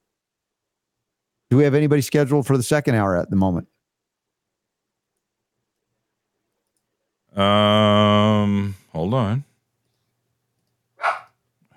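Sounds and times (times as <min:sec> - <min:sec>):
speech: 0:01.5 - 0:03.8, 0:07.4 - 0:07.9, 0:08.6 - 0:09.5
dog barking: 0:11.0 - 0:11.4.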